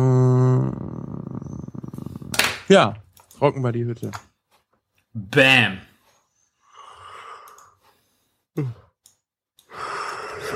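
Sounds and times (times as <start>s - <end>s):
person yawning: 0.0s - 2.4s
speech: 2.7s - 4.3s, 5.2s - 5.9s, 8.6s - 8.8s.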